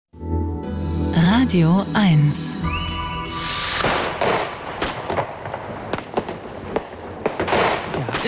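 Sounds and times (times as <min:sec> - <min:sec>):
speech: 0:01.5 - 0:03.5
New Year's Eve fireworks and firecrackers banging: 0:03.4 - 0:08.2.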